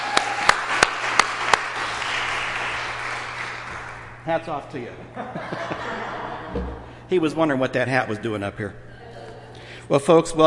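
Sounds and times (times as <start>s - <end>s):
sparse applause from an audience: 0.0s - 4.1s
steady room hiss: 0.0s - 10.4s
speech: 4.2s - 8.9s, 9.9s - 10.4s
laughter: 5.1s - 7.0s, 8.9s - 9.7s.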